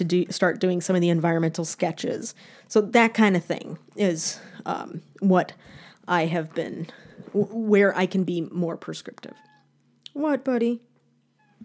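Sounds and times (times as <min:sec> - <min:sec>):
speech: 0:00.0 - 0:09.5, 0:10.2 - 0:10.9
low steady hum: 0:00.0 - 0:11.6
faint cat meow: 0:09.3 - 0:09.7.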